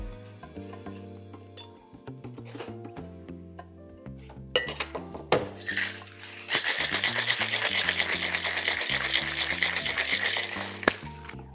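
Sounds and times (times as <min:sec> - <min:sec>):
soft low musical backing: 0:00.0 - 0:11.5
ice cubes clinking into a metal cocktail shaker: 0:05.6 - 0:11.3.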